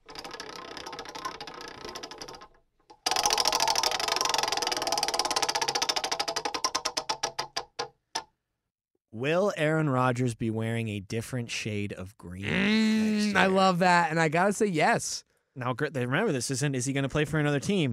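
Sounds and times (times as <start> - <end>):
spinning prize wheel ticking: 0.0 - 7.4
speech: 9.2 - 17.9.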